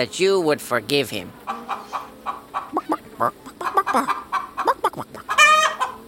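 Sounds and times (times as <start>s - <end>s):
speech: 0.0s - 1.4s, 3.2s - 4.2s
chicken clucking: 1.4s - 6.0s.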